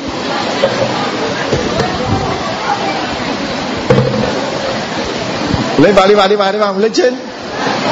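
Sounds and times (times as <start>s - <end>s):
faint indistinct voices urging people to hurry: 0.0s - 6.0s
rain falling: 0.0s - 7.9s
speech: 0.6s - 1.5s, 5.8s - 7.9s.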